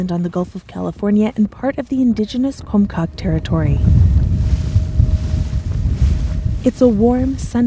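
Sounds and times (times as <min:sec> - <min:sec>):
speech: 0:00.0 - 0:04.1, 0:06.6 - 0:07.6
blustery wind buffeting the microphone: 0:01.6 - 0:07.6
small motorboat engine droning with low rumble: 0:01.7 - 0:07.6.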